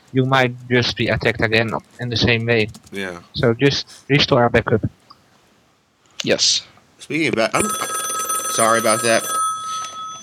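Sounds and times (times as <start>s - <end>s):
speech: 0.1s - 5.0s, 6.2s - 8.0s, 8.6s - 9.4s
telephone ringing with a high electronic tone: 7.6s - 10.2s.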